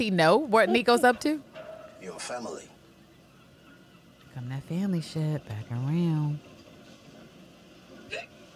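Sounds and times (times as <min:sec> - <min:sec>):
speech: 0:00.0 - 0:02.7, 0:04.4 - 0:06.5, 0:08.1 - 0:08.3
woman hiccuping: 0:08.1 - 0:08.3.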